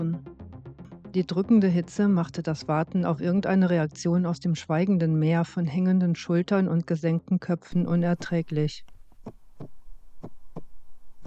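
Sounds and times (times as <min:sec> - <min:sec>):
speech: 0:01.2 - 0:08.9
pounding heartbeat: 0:07.8 - 0:11.2.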